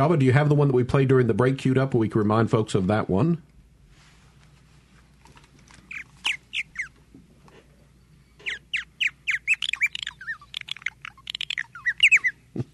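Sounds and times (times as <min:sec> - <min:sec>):
speech: 0:00.0 - 0:03.5
purple martin calling with gurgling chattering notes: 0:05.9 - 0:07.0, 0:08.4 - 0:12.4.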